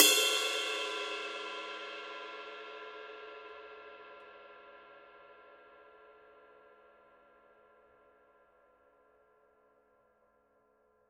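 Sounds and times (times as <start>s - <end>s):
21-inch medium ride cymbal bell: 0.0s - 2.2s.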